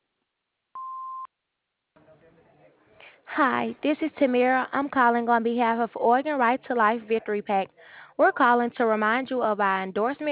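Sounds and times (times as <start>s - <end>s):
answering machine electronic beep: 0.8s - 1.3s
speech: 3.4s - 10.2s.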